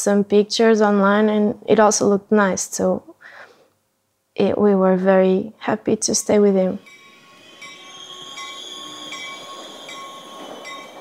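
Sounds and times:
speech: 0.0s - 3.1s, 4.4s - 7.0s
train rolling into the station in Padova: 6.0s - 10.9s.

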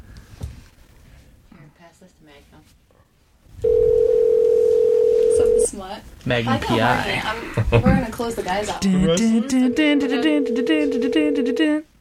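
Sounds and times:
speech: 1.8s - 2.8s, 5.7s - 11.9s
telephone line tone: 3.6s - 5.7s, 9.6s - 11.8s.

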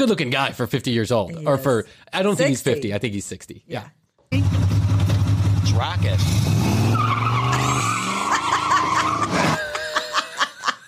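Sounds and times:
speech: 0.0s - 4.8s, 5.7s - 7.2s
car tires screeching and skidding: 6.2s - 9.6s
laughter: 7.5s - 10.8s.

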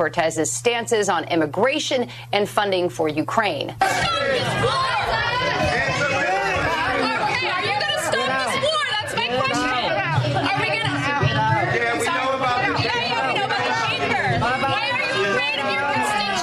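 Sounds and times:
speech: 0.0s - 6.2s
packed town hall crowd shouting and yelling angrily: 3.8s - 16.4s.

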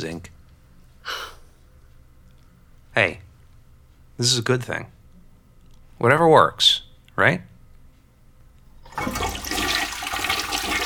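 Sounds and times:
speech: 0.0s - 0.4s, 3.0s - 3.2s, 4.2s - 5.0s, 6.0s - 7.5s, 9.0s - 9.3s
toilet flushing chemotherapy medicine away: 8.9s - 10.8s.

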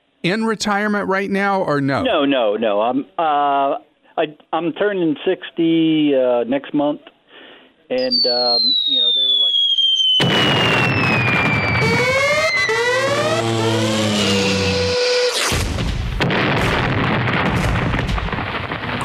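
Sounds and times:
speech: 0.2s - 7.1s, 7.9s - 9.2s
bombs whistling as they fall in pitch: 8.0s - 18.8s
fireworks bursting loudly with crackling pops and booms: 8.0s - 19.0s.

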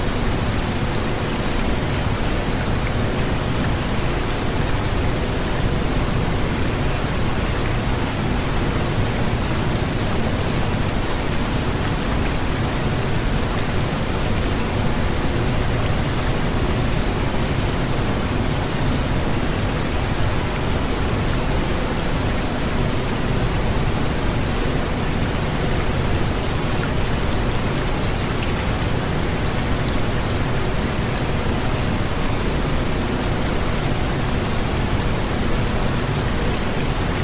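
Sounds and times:
steady pink noise hiss: 0.0s - 37.2s.

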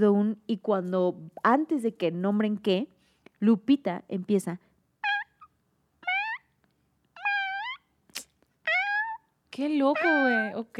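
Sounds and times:
speech: 0.0s - 4.7s, 9.6s - 10.7s
voice imitating cat meowing: 5.0s - 6.5s, 7.2s - 9.3s, 9.9s - 10.6s.

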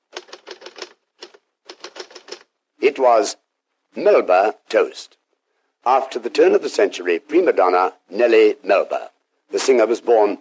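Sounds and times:
Underwood typewriter keys clacking: 0.1s - 2.5s
speech: 2.8s - 5.2s, 5.8s - 10.3s.

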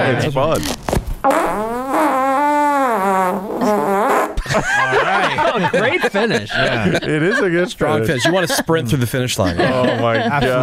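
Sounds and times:
speech: 0.1s - 2.2s, 4.5s - 10.6s
long loud buzzing fart: 1.2s - 4.4s
laughter: 4.4s - 10.6s.

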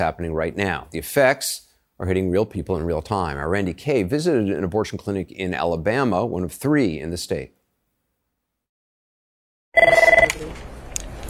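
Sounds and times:
speech: 0.0s - 7.6s, 9.8s - 10.1s
office telephone bell ringing in an electronic trill: 9.8s - 10.3s.

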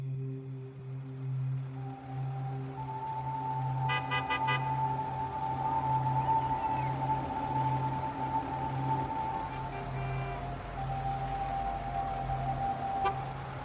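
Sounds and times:
low steady engine rumble of idling traffic in a traffic jam: 0.0s - 13.6s
long drawn-out car horn blaring: 3.9s - 4.8s, 9.7s - 10.4s.

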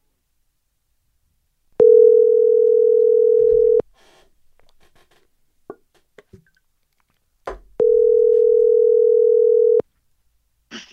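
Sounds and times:
outgoing phone call ringing tone: 1.8s - 3.8s, 7.8s - 9.8s.

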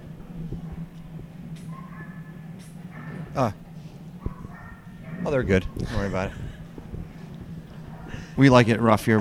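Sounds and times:
steady low electrical hum: 0.0s - 9.2s
dog giving a short yelp-like bark: 1.7s - 3.4s, 4.2s - 5.8s
speech: 3.4s - 3.6s, 5.2s - 6.5s, 8.4s - 9.2s.

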